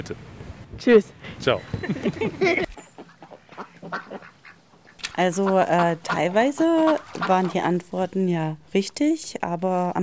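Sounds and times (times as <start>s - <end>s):
speech: 0.0s - 2.7s, 5.2s - 10.0s
ducks quacking: 2.9s - 7.8s.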